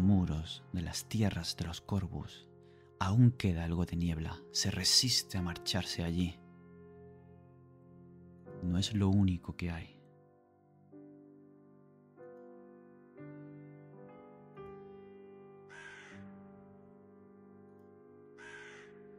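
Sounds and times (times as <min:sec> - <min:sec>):
speech: 0:00.4 - 0:06.4, 0:08.6 - 0:10.0
crow cawing in a misty forest: 0:15.7 - 0:16.3, 0:18.4 - 0:19.0.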